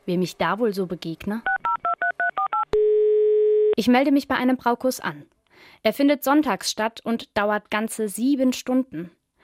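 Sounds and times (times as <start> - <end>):
speech: 0.1 - 1.6, 3.8 - 9.2
telephone touch-tone dialing beeps: 1.5 - 3.8.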